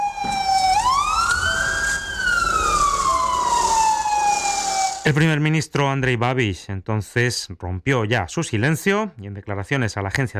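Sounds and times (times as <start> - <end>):
road noise: 0.0 - 5.1
hospital emergency car siren wailing: 0.0 - 5.2
speech: 5.1 - 10.3.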